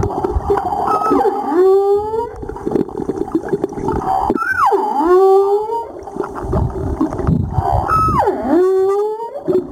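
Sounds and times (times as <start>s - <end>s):
noisy underwater background: 0.0s - 9.6s
humpback whale song: 0.3s - 2.6s, 3.9s - 6.3s, 7.4s - 9.6s.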